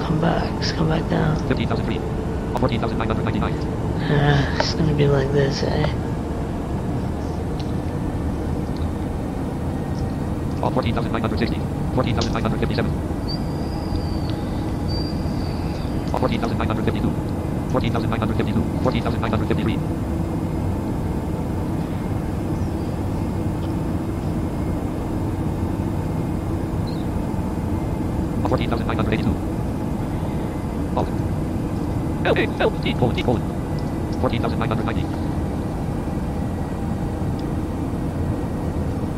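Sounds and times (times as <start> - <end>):
airplane engine drone heard from inside the aircraft in flight: 0.0 - 39.1
speech: 0.1 - 6.1, 10.6 - 13.1, 16.2 - 20.2, 32.6 - 33.6, 34.2 - 35.3.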